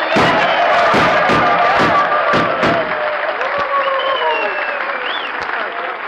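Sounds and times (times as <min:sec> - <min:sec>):
gunshots: 0:00.0 - 0:03.2
crowd applauding and cheering: 0:00.0 - 0:06.0.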